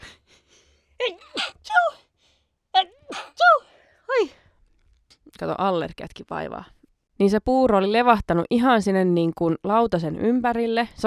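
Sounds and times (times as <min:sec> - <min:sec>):
person sneezing: 0:01.0 - 0:02.0, 0:02.8 - 0:03.7
speech: 0:05.4 - 0:11.0.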